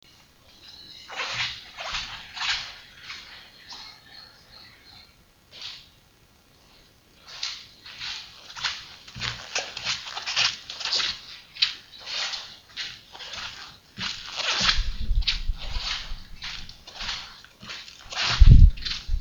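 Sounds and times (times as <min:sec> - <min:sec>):
footsteps of rubber soles on vinyl: 0:00.5 - 0:03.9, 0:07.3 - 0:19.1.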